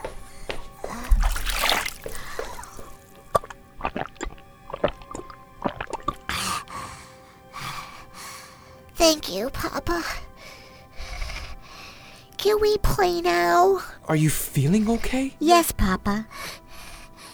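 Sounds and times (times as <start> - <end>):
water splashing: 0.9 - 6.3
speech: 9.3 - 10.2, 12.4 - 16.4.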